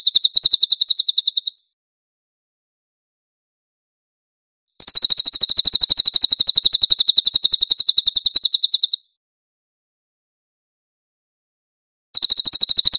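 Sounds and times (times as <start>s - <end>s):
pygmy bushtit trill song: 0.0s - 1.6s, 4.8s - 9.1s, 12.2s - 12.9s.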